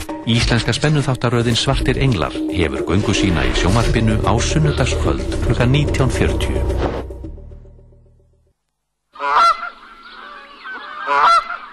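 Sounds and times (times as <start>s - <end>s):
speech: 0.2s - 7.0s
fading tone: 3.0s - 8.4s
brief thud: 6.8s - 7.1s
geese honking: 9.2s - 11.7s.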